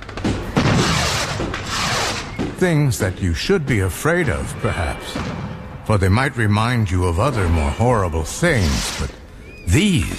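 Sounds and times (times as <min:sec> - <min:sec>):
dense fireworks crackling and booming: 0:00.0 - 0:03.0, 0:05.0 - 0:05.8
speech: 0:02.6 - 0:10.1.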